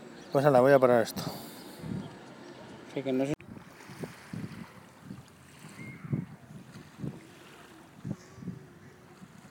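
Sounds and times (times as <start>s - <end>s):
speech: 0.3s - 2.0s, 2.9s - 3.4s
ocean waves breaking on a beach: 1.0s - 9.4s
wind buffeting the microphone: 1.8s - 2.2s, 3.4s - 9.4s.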